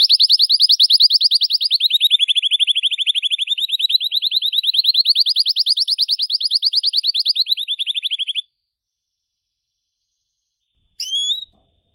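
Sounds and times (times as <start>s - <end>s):
blue Belgian canary singing a rolling trill: 0.0s - 8.4s, 11.0s - 11.6s.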